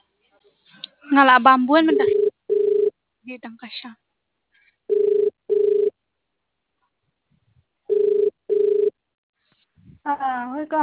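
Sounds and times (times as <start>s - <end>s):
speech: 0.5s - 2.2s, 3.3s - 4.0s, 10.1s - 10.8s
telephone ringing in a double-burst pattern: 1.9s - 2.9s, 4.9s - 5.9s, 7.9s - 8.9s.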